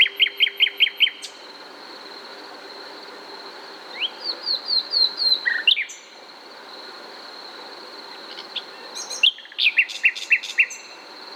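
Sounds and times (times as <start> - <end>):
common nightingale Luscinia megarhynchos singing: 0.0 - 1.6, 3.9 - 6.3, 8.1 - 11.3.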